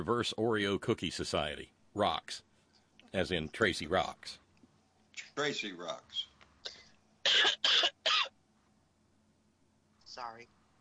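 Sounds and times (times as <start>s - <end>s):
speech: 0.0s - 2.5s, 3.1s - 4.4s, 5.2s - 6.3s, 10.2s - 10.6s
coughing: 6.7s - 8.4s.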